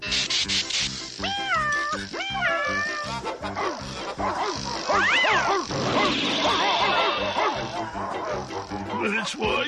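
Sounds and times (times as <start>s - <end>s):
remote-controlled toy cat meowing: 1.2s - 3.2s, 4.9s - 5.7s
dogs barking and yipping: 1.6s - 9.6s
speech: 9.0s - 9.6s.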